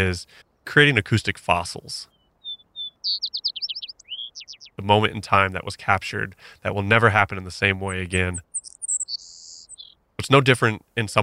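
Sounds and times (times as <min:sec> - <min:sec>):
speech: 0:00.0 - 0:02.1, 0:04.8 - 0:08.5, 0:10.3 - 0:11.2
wild bird singing: 0:02.0 - 0:05.1, 0:07.5 - 0:10.0.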